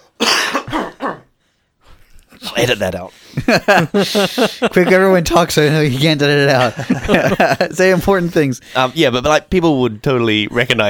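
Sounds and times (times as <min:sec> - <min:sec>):
harsh chesty cough: 0:00.0 - 0:01.4
speech: 0:02.6 - 0:10.8
laughter: 0:03.3 - 0:08.6.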